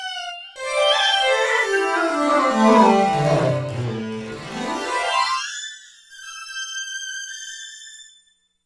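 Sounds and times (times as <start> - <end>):
synthesizer ethnic lead: 0.6 - 5.4.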